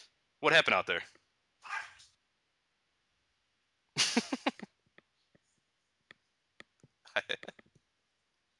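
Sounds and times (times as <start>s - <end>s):
speech: 0.0s - 1.2s
dog bark: 1.6s - 2.0s
laughter: 4.0s - 4.7s.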